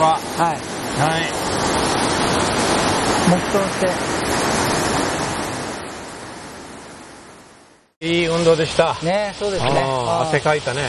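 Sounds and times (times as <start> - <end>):
waterfall roaring: 0.0 - 6.8, 9.4 - 10.8
speech: 0.1 - 1.6, 3.3 - 4.4, 8.1 - 10.8.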